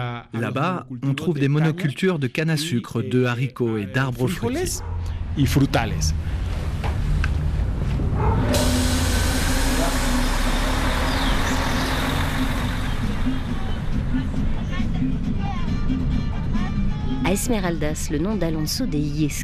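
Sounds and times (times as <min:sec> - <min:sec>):
speech: 0:00.2 - 0:06.4, 0:17.3 - 0:19.4
bus engine rumbling inside a moving bus: 0:04.0 - 0:19.4
road noise inside a moving bus: 0:04.3 - 0:17.0
hiss: 0:08.5 - 0:12.9.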